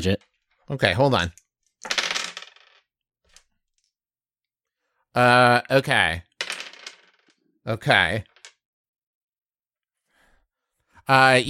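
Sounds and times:
speech: 0:00.0 - 0:01.4, 0:05.2 - 0:06.3, 0:07.6 - 0:08.3, 0:11.1 - 0:11.4
handful of dice clattering onto a hard surface: 0:01.8 - 0:03.4, 0:06.4 - 0:07.4, 0:08.1 - 0:08.6.

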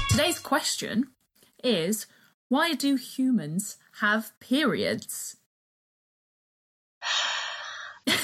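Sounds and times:
speech: 0:00.1 - 0:05.4
deep breath: 0:07.0 - 0:08.1.

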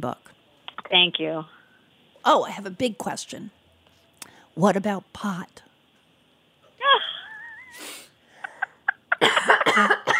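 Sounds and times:
speech: 0:00.0 - 0:01.6, 0:02.2 - 0:03.6, 0:04.6 - 0:05.6, 0:09.8 - 0:10.0
person coughing: 0:09.2 - 0:10.1.

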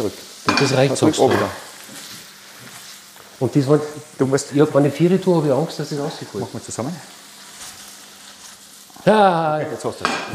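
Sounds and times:
speech: 0:00.0 - 0:02.0, 0:03.4 - 0:07.2, 0:09.0 - 0:10.3
food sizzling while tossed in a heavy pan: 0:00.0 - 0:10.3.

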